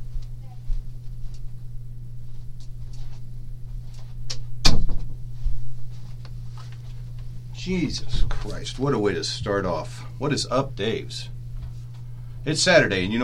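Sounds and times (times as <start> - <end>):
faint shuffling: 0.0 - 4.2, 5.3 - 10.2
steady low electrical hum: 0.0 - 13.2
door shutting with a sharp thud: 4.6 - 5.2
speech: 7.7 - 11.3, 12.4 - 13.2.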